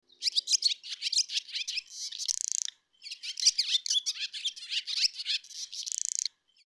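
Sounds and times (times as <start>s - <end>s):
bird calling with high chirps, twittering notes and buzzy trills: 0.1s - 6.6s.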